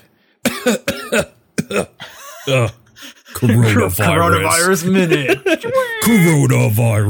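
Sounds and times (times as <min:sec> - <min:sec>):
harsh coughing in a coronavirus news segment cue: 0:00.4 - 0:03.6
speech: 0:00.6 - 0:07.0
laughter: 0:02.0 - 0:06.4.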